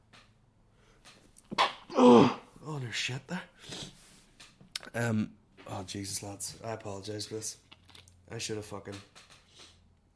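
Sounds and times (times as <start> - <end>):
human sneeze: 1.6 - 2.5
speech: 2.0 - 3.9, 5.0 - 7.7, 8.3 - 9.3.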